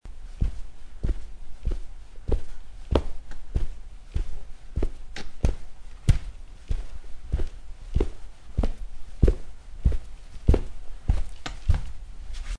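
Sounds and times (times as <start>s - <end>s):
footsteps in socks: 0.1s - 12.5s.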